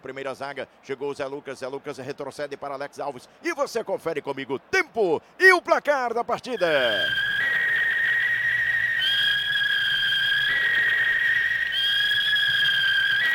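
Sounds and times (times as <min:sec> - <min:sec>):
speech: 0:00.0 - 0:07.2
referee's whistle starting the second half of a football match: 0:06.4 - 0:13.3.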